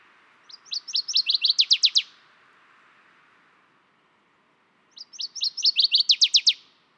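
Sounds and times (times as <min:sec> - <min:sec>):
faint hiss: 0:00.0 - 0:06.9
northern waterthrush singing: 0:00.4 - 0:02.2, 0:04.9 - 0:06.7.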